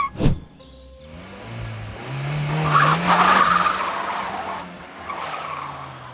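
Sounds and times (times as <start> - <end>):
sharp thud: 0.0 - 0.5
car engine: 0.0 - 6.1
car tires squealing in a skid: 0.0 - 6.1.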